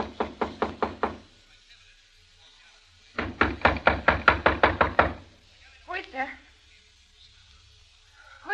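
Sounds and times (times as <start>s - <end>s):
knocking on a hotel room door: 0.0s - 1.3s, 3.2s - 5.3s.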